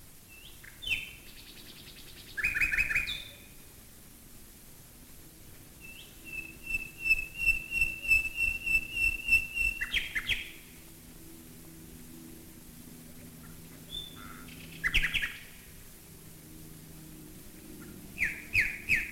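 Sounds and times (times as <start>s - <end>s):
common nightingale song: 0.2s - 3.6s, 5.8s - 10.7s, 13.2s - 15.7s, 17.8s - 19.1s.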